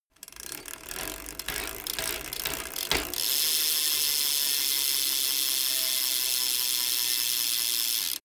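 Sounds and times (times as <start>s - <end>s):
BMX bike pedaling and accelerating: 0.1s - 8.2s.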